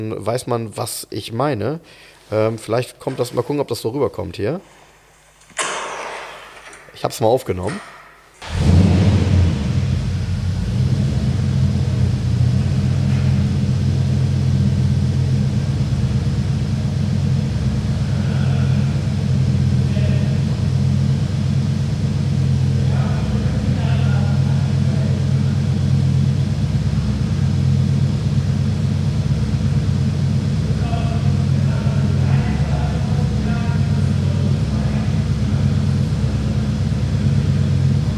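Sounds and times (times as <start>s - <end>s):
speech: 0.0s - 4.8s, 7.0s - 8.6s
5-litre V8 car engine running: 8.4s - 38.1s.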